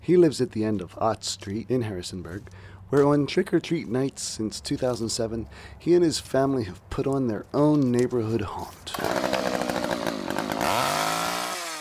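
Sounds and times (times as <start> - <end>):
speech: 0.0 - 9.8
chainsaw engine revving at a neighbourhood Halloween haunt in Harrisonburg: 8.9 - 11.7.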